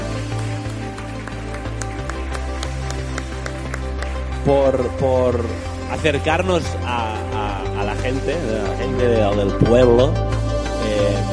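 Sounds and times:
crowd applauding: 0.0s - 6.4s
speech: 4.4s - 10.3s.

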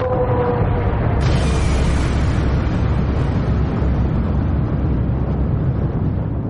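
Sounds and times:
supernova explosion sound effect with deep rumbling blast: 0.0s - 6.4s
sharp crackling burst of supernova explosion effect: 1.2s - 4.4s.

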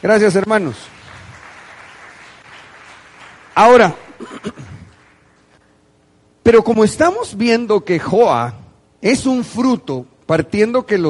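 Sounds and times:
speech: 0.0s - 1.0s, 3.6s - 4.6s, 6.4s - 11.0s
crowd applauding: 0.0s - 5.6s.

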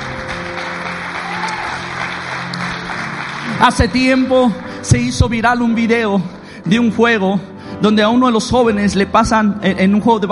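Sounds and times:
large group applauding: 0.0s - 5.0s
speech: 3.6s - 10.3s.

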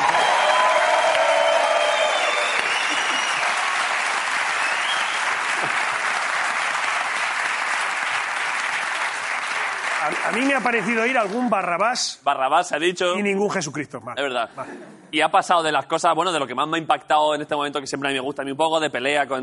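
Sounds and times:
faint cheers from a crowd: 0.0s - 3.6s
audience applause: 0.0s - 11.5s
speech: 10.3s - 19.4s.

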